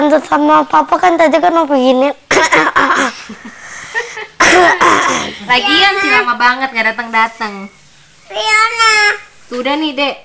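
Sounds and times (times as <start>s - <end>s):
speech: 0.1s - 3.6s, 4.5s - 10.2s
adult woman coughing: 2.3s - 3.2s, 4.4s - 5.5s.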